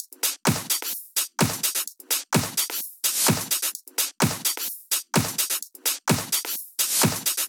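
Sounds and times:
drum loop: 0.0 - 7.4.

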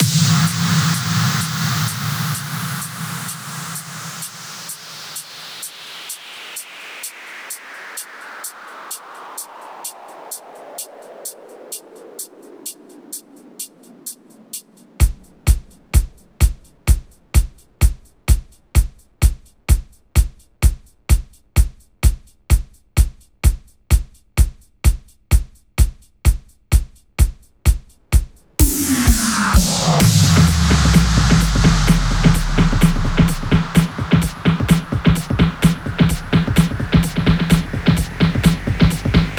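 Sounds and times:
128 BPM house electro fills: 0.0 - 39.3.

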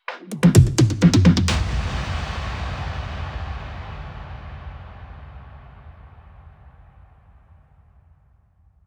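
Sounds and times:
big drum fills: 0.0 - 4.7.

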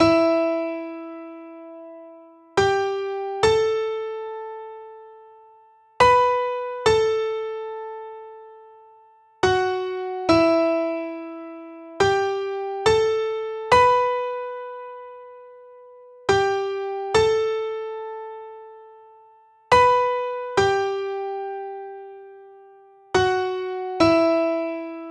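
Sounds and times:
dry piano melody in E minor at 140 BPM: 0.0 - 25.0.

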